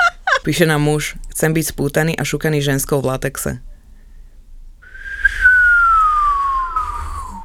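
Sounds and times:
laughter: 0:00.0 - 0:00.6
speech: 0:00.4 - 0:03.7
person whistling a long downward-gliding note: 0:04.8 - 0:07.4.

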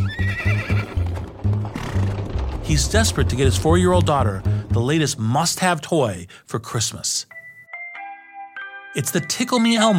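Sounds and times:
horse pulling a hansom cab neighing: 0:00.0 - 0:02.2
horse hooves clip-clopping on a city street: 0:00.0 - 0:02.5
speech: 0:02.7 - 0:07.4, 0:09.0 - 0:09.9.

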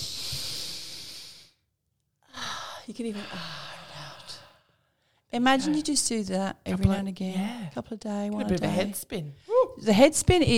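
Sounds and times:
deep belly breath drawn in: 0:00.0 - 0:01.6, 0:02.3 - 0:05.2
speech: 0:02.9 - 0:03.7, 0:05.3 - 0:10.5.

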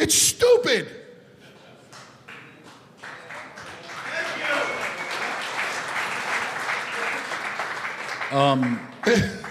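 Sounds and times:
speech: 0:00.0 - 0:01.0, 0:08.3 - 0:09.4
audience applause: 0:03.0 - 0:09.4.

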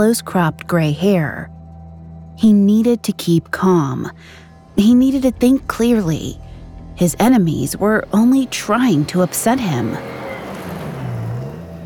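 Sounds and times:
speech: 0:00.0 - 0:01.6, 0:02.4 - 0:06.4, 0:07.0 - 0:10.2
truck engine speeding past a house: 0:04.5 - 0:11.8.

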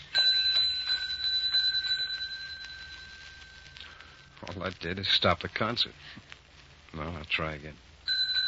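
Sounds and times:
desk bell struck: 0:00.2 - 0:04.1, 0:08.1 - 0:08.4
speech: 0:04.6 - 0:06.3, 0:07.0 - 0:07.9.

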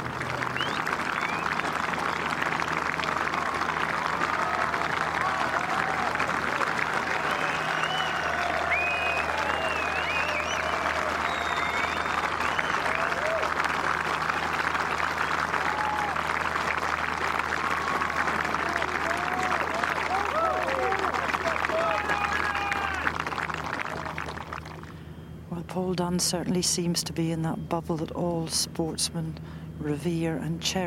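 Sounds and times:
large grandstand crowd clapping after a golf shot: 0:00.0 - 0:25.0
grandstand crowd whistles: 0:00.4 - 0:02.9, 0:07.1 - 0:13.5
speech: 0:26.0 - 0:30.8.

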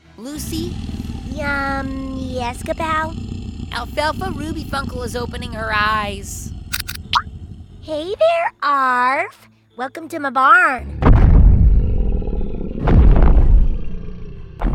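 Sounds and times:
speech: 0:00.2 - 0:06.5, 0:07.9 - 0:11.1
loud creature roar: 0:00.4 - 0:07.9, 0:10.8 - 0:14.6.

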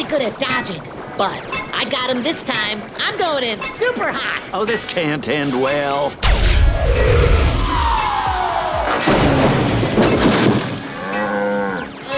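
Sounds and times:
speech: 0:00.1 - 0:07.4
crash and splintering impact of cow through fence: 0:06.2 - 0:11.0
cow mooing: 0:10.9 - 0:12.0.

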